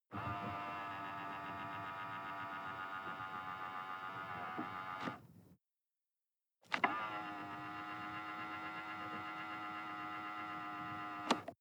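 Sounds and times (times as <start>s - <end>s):
sports car interior side mirror adjusting: 0.2s - 5.3s, 6.7s - 11.5s.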